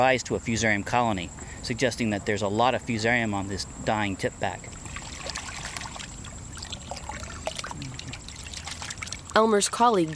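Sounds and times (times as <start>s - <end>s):
speech: 0.0s - 4.8s, 9.4s - 10.1s
water poured and sloshed rinsing muck off marsh grass roots in a metal pail: 2.9s - 10.1s.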